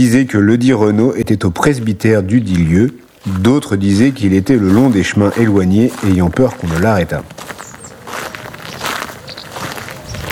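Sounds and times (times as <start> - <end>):
speech: 0.0 - 7.6
footsteps of someone walking through a cemetery: 0.0 - 10.3.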